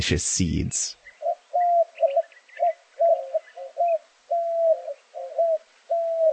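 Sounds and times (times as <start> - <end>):
speech: 0.0 - 1.0
white-winged dove cooing: 1.2 - 6.3.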